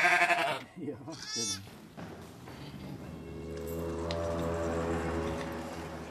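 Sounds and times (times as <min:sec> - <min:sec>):
newborn lamb bleating on a farm: 0:00.0 - 0:01.7
steady sustained musical tone: 0:03.0 - 0:06.0.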